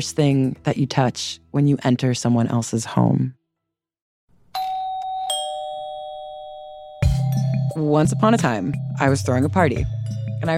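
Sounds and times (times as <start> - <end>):
speech: 0.0 - 3.4, 7.8 - 10.5
doorbell chiming a two-note ding-dong: 4.6 - 8.6.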